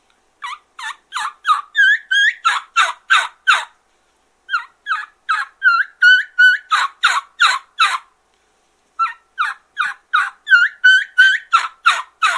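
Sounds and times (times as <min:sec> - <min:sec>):
turkey hen squealing whistled notes and raspy yelps: 0:00.4 - 0:03.8, 0:04.5 - 0:08.1, 0:09.0 - 0:12.3.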